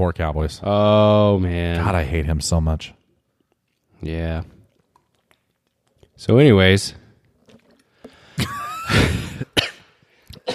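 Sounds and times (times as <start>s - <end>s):
speech: 0.0s - 3.0s, 4.0s - 4.6s, 6.2s - 7.0s
harsh throaty coughing: 8.4s - 10.5s.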